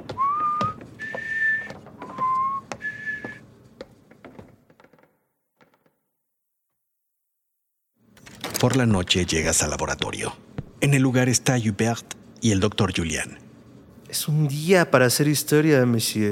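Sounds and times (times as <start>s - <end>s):
sharp thumping steps climbing stairs: 0.0s - 6.0s, 10.5s - 10.8s
person whistling a cheerful tune: 0.1s - 3.4s
speech: 8.6s - 13.4s, 14.1s - 16.3s.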